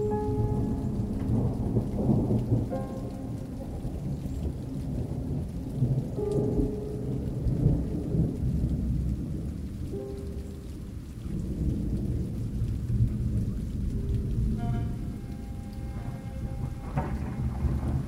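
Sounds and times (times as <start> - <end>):
distant thunder rumbling: 0.0 - 18.0
rain pouring: 0.0 - 18.0.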